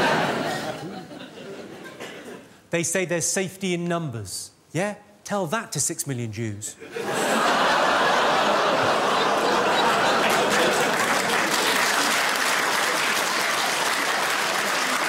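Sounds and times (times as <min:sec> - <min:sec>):
laughter: 0:00.0 - 0:02.5, 0:06.8 - 0:13.1
speech: 0:02.7 - 0:07.2
comedy club audience applause in London: 0:08.0 - 0:15.0.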